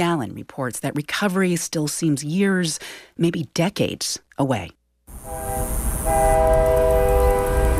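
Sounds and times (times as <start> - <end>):
speech: 0.0 - 6.3
train rumbling past: 5.1 - 7.7.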